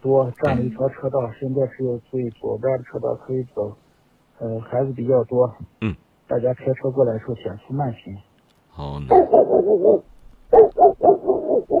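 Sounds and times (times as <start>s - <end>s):
speech: 0.0s - 3.8s, 4.4s - 11.1s
big wolfdog barking: 9.1s - 11.7s.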